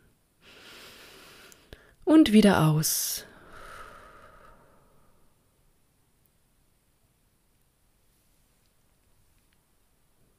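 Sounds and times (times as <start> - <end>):
deep inhale through the nose: 0.4 - 2.0, 3.3 - 5.3
speech: 2.1 - 3.3
faint click: 8.6 - 9.7.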